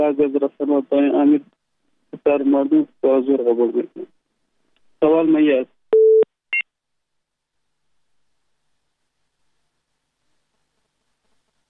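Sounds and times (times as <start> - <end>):
speech: 0.0 - 1.6, 2.2 - 4.1, 5.0 - 5.7
electronic beep of a telephone call being cut off: 6.0 - 6.3.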